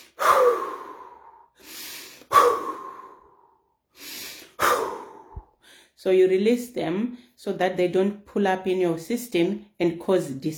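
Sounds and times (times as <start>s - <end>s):
slow deep breathing exercise inhales and sighing exhales: 0.0s - 6.0s
speech: 6.0s - 10.5s.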